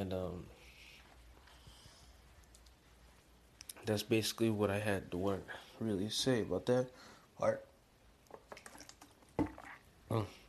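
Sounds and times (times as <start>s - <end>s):
speech: 0.0s - 0.6s, 3.8s - 7.7s, 10.1s - 10.4s
person sipping water with wet clicks: 8.4s - 10.3s
person gulping water: 8.5s - 10.3s.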